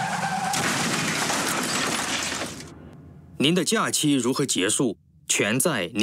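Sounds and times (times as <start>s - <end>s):
car tire screech: 0.0s - 2.7s
metal crunching: 0.0s - 2.9s
car crash of a drink-driving car: 0.0s - 3.0s
glass shattering: 0.4s - 2.7s
speech: 3.4s - 6.0s.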